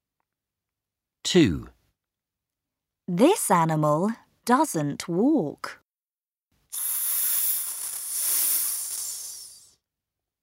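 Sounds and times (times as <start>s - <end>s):
speech: 1.3s - 1.7s, 3.1s - 5.8s
snake hissing: 6.7s - 9.8s.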